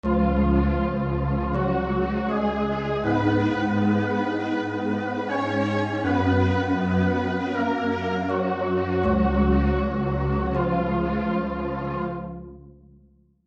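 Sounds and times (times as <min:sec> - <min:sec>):
orchestral pad: 0:00.0 - 0:12.3.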